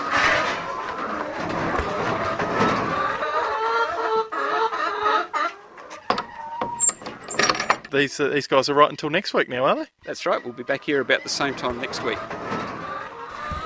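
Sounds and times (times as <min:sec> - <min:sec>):
chicken clucking: 0:00.0 - 0:06.9, 0:09.8 - 0:13.6
sliding door: 0:01.3 - 0:03.1, 0:06.1 - 0:07.9, 0:11.3 - 0:13.6
speech: 0:07.9 - 0:12.6.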